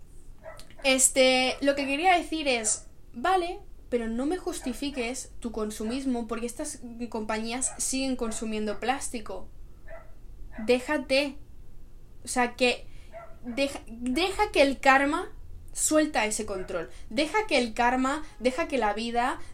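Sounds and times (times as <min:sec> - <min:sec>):
dog barking: 0:00.4 - 0:03.0, 0:04.5 - 0:05.3, 0:07.5 - 0:08.8, 0:09.8 - 0:10.9, 0:13.1 - 0:13.8, 0:16.4 - 0:17.0
speech: 0:00.8 - 0:09.6, 0:10.6 - 0:11.4, 0:12.2 - 0:19.5.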